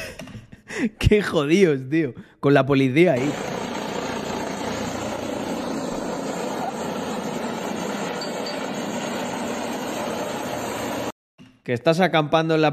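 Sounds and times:
speech: 0:00.8 - 0:03.5, 0:11.7 - 0:12.7
helicopter landing, engine and rotor roar: 0:03.3 - 0:11.1.

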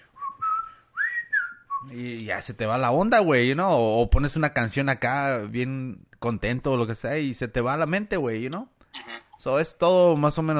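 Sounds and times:
person whistling a short melodic phrase: 0:00.0 - 0:01.9
speech: 0:01.8 - 0:08.8, 0:09.4 - 0:10.5.

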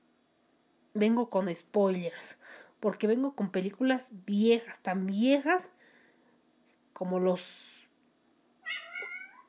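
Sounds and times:
speech: 0:01.0 - 0:05.9, 0:07.0 - 0:07.7
cat meowing: 0:08.6 - 0:09.4.

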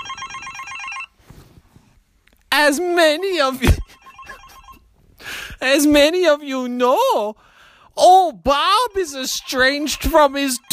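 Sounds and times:
mobile phone electronic ringtone trilling: 0:00.0 - 0:01.1, 0:03.8 - 0:04.8, 0:09.3 - 0:10.7
speech: 0:02.7 - 0:03.8, 0:05.6 - 0:10.7.

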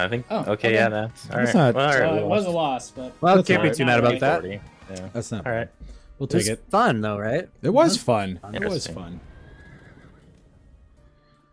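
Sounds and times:
speech: 0:00.0 - 0:09.3
horse neighing: 0:08.6 - 0:10.8.

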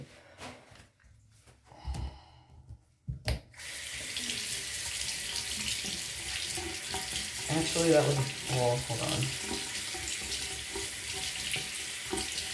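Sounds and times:
breathy sounds: 0:01.7 - 0:02.8
water running from a tap while rinsing something out: 0:03.6 - 0:12.5
speech: 0:07.6 - 0:09.7.

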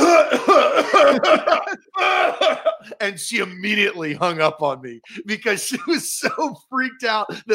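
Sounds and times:
person coughing harshly over a phone call: 0:00.0 - 0:03.0, 0:05.7 - 0:06.7
laughter: 0:00.0 - 0:03.6, 0:05.1 - 0:07.5
speech: 0:03.1 - 0:07.5.

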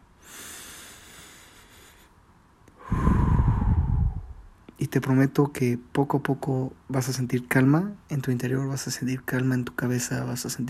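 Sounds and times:
slow deep breath through the nose: 0:00.2 - 0:04.5
speech: 0:04.8 - 0:10.6.

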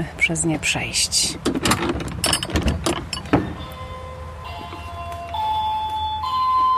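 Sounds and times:
speech: 0:00.0 - 0:02.6
heavy wooden theatre entrance door pushed open: 0:01.4 - 0:03.8
bell on a theatre door chiming: 0:03.2 - 0:06.7.

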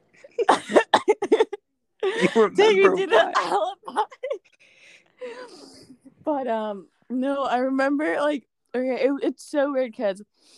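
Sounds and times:
harsh hacking coughs: 0:00.4 - 0:01.5
speech: 0:02.2 - 0:04.2, 0:06.3 - 0:10.5.

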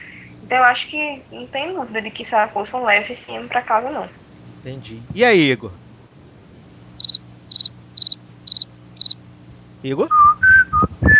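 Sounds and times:
faint low hum: 0:00.0 - 0:11.1
speech: 0:00.5 - 0:05.8, 0:09.8 - 0:10.4
cricket chirping sound effect: 0:06.8 - 0:09.4.

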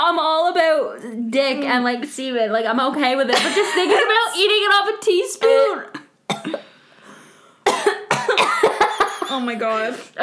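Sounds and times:
speech: 0:00.8 - 0:06.7, 0:09.3 - 0:10.2
person with a funny-feeling throat gagging and coughing: 0:05.4 - 0:06.7, 0:07.7 - 0:09.7.

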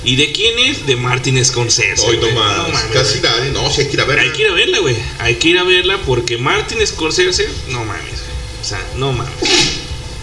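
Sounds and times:
speech: 0:00.0 - 0:09.8
person sneezing: 0:09.4 - 0:09.9.

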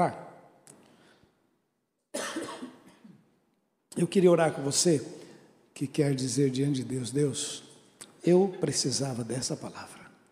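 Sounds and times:
speech: 0:00.0 - 0:00.2, 0:04.0 - 0:05.2, 0:05.8 - 0:10.0
loud harsh raspy cough: 0:02.1 - 0:03.2.

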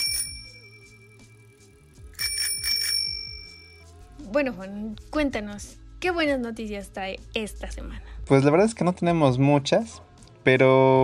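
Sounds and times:
bell ringing as segment transition: 0:00.0 - 0:01.6, 0:02.2 - 0:03.8
speech: 0:04.2 - 0:11.0.

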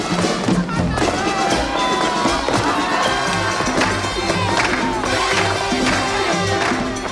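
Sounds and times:
dense crowd din of overlapping voices during a film musical dance: 0:00.0 - 0:07.1.

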